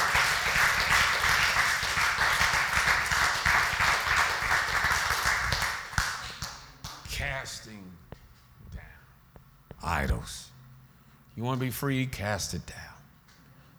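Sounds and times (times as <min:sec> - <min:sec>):
audience clapping: 0:00.0 - 0:08.9
speech: 0:11.4 - 0:12.9.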